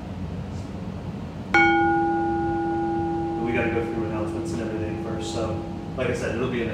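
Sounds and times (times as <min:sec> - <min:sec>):
bell strike ringing: 0:01.6 - 0:06.7
speech: 0:05.2 - 0:06.7.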